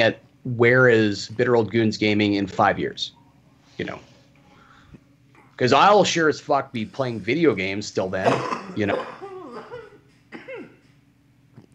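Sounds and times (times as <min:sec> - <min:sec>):
speech: 0:00.0 - 0:03.2, 0:03.8 - 0:04.1, 0:05.6 - 0:09.2
stifled coughs: 0:08.2 - 0:10.9.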